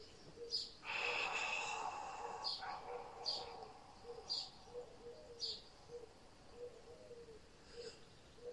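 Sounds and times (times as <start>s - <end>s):
whispered ah exhalation during a guided breathing exercise: 0.8s - 4.4s.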